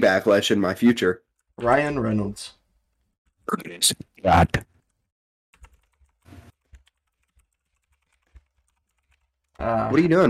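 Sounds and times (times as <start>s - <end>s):
speech: 0.0s - 2.6s, 3.5s - 4.7s, 9.6s - 10.2s
rapid clattering computer keyboard typing: 5.5s - 9.6s.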